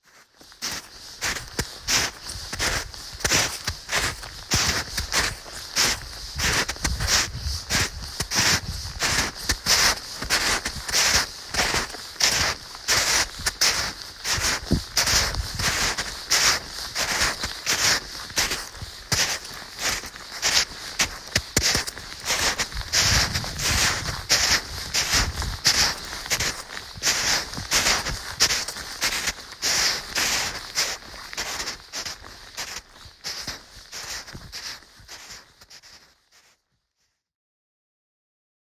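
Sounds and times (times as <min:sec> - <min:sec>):
footsteps walking in snow in Gavarnie: 0:00.0 - 0:36.6.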